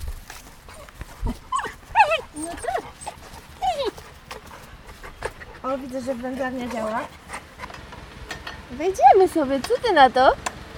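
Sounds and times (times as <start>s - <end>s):
dog whimpering and yelping: 0.7s - 5.6s
speech: 5.7s - 7.2s, 8.7s - 10.4s.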